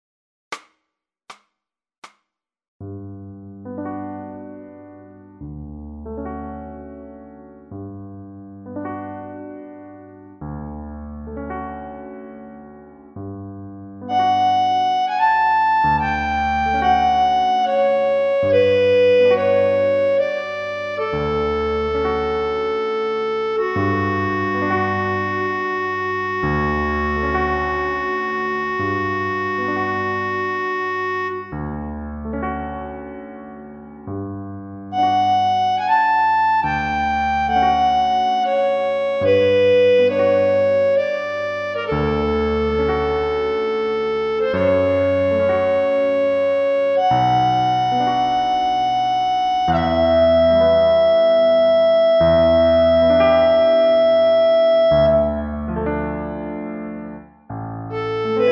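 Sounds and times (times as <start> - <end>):
piano solo: 3.5 - 58.5
reference clarinet: 14.0 - 33.2, 34.9 - 57.2, 57.9 - 58.5.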